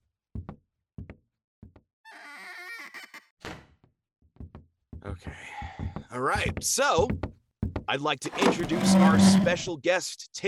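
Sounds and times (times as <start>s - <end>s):
speech: 5.0s - 7.3s, 7.9s - 10.4s
long wavering door hinge creak: 8.3s - 9.6s.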